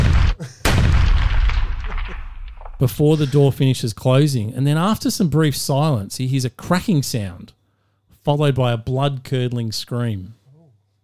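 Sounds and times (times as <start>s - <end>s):
pistol gunshots fired inside a room: 0.0s - 2.6s
speech: 2.8s - 7.6s, 8.2s - 10.4s.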